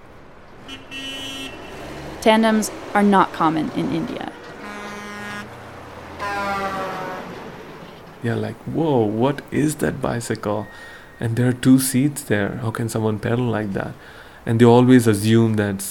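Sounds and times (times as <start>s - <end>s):
busy road traffic: 0.0s - 15.8s
car horns honking: 0.6s - 8.2s, 10.6s - 11.6s
speech: 2.2s - 4.4s, 8.2s - 15.8s.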